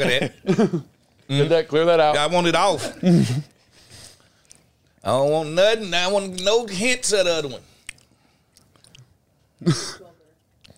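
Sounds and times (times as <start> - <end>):
speech: 0.0 - 3.5, 5.0 - 7.7, 9.6 - 10.0
chewing a cookie: 3.5 - 5.1, 7.6 - 9.6, 10.3 - 10.7.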